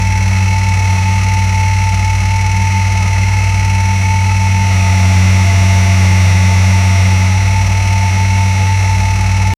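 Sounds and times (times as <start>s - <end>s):
Valmet tractor engine: 0.0s - 9.5s.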